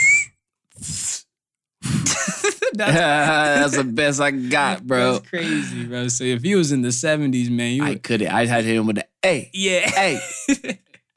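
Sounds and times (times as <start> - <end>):
person attempting to whistle: 0.0 - 1.2
laughter: 2.0 - 5.9, 9.8 - 11.1
speech: 2.8 - 11.1.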